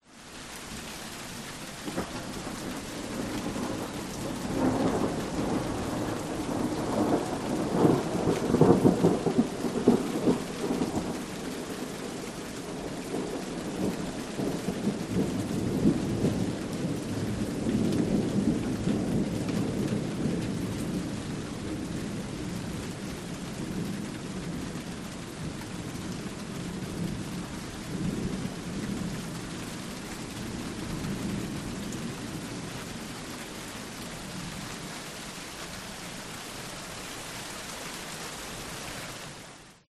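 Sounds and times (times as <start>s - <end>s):
light rain: 0.0s - 39.8s
wind: 0.0s - 39.8s
distant thunder rumble: 1.8s - 29.6s.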